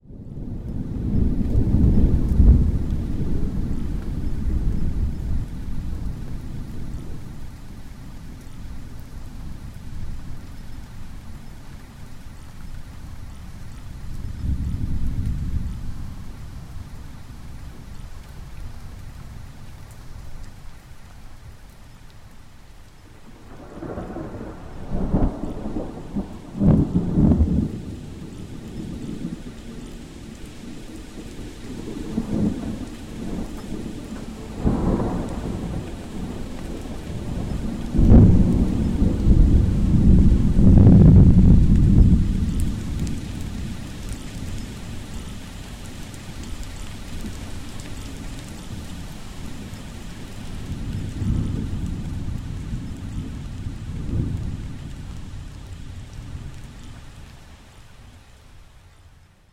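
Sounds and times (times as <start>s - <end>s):
thunderstorm: 0.1s - 20.4s, 23.0s - 58.7s.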